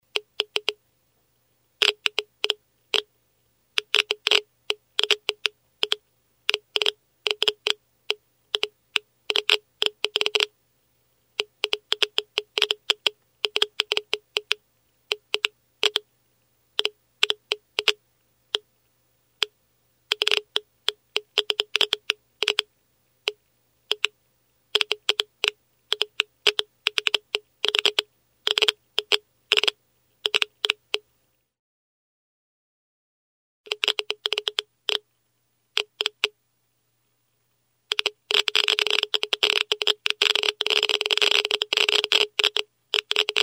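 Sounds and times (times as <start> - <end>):
Geiger counter clicking with radio signals: 0.1 - 0.8, 1.8 - 3.1, 3.8 - 10.5, 11.3 - 16.1, 16.8 - 18.7, 19.4 - 31.1, 33.7 - 35.1, 35.7 - 36.4, 37.9 - 43.4.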